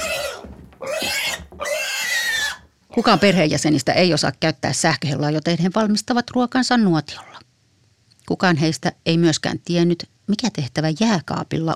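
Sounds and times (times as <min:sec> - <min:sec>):
pig grunting: 0:00.0 - 0:03.6, 0:07.1 - 0:07.4
speech: 0:03.0 - 0:07.5, 0:08.3 - 0:11.7.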